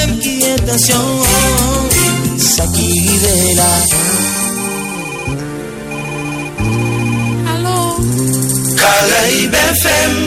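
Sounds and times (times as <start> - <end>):
speech: 0.3 - 1.8, 2.4 - 4.4, 9.0 - 10.2
telephone ringing at a radio station with an electronic musical ringtone: 4.0 - 8.8.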